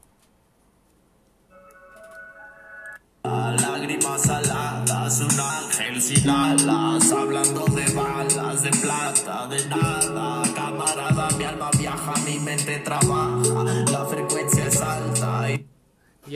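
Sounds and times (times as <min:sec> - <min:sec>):
deep sustained bass notes: 0:03.3 - 0:09.0, 0:09.7 - 0:15.6
loud rap track: 0:03.3 - 0:15.6
steady hip-hop beat: 0:03.3 - 0:15.6
crisp percussion hits: 0:03.6 - 0:15.0
speech: 0:03.6 - 0:15.7.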